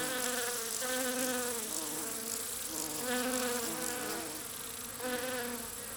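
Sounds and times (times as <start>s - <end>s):
bee buzzing: 0.0s - 5.9s
constant high hiss: 0.0s - 5.9s.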